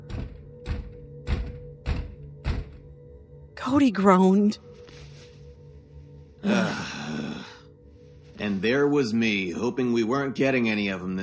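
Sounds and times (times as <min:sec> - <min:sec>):
heavy knocks on a front door: 0:00.0 - 0:03.0
speech: 0:03.6 - 0:04.7, 0:08.6 - 0:11.2.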